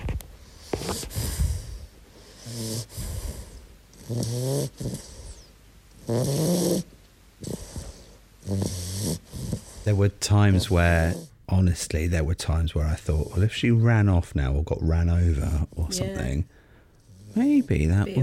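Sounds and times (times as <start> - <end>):
sleeping cat snoring: 0.6 - 11.3, 17.0 - 18.2
speech: 4.1 - 5.2, 6.1 - 7.6, 8.5 - 8.8, 9.9 - 16.6, 17.4 - 18.2.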